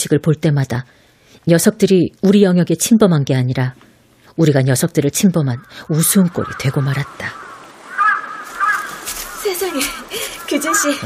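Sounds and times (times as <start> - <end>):
speech: 0.0 - 7.4, 10.6 - 11.0
faint hiss of outdoor background: 0.0 - 11.0
crow cawing: 5.6 - 11.0
laughter: 9.8 - 11.0.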